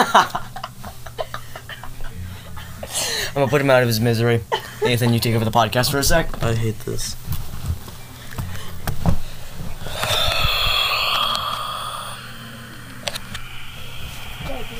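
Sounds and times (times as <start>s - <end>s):
speech: 0.0s - 0.4s, 3.4s - 7.2s
heavy breathing into the microphone: 8.4s - 14.7s.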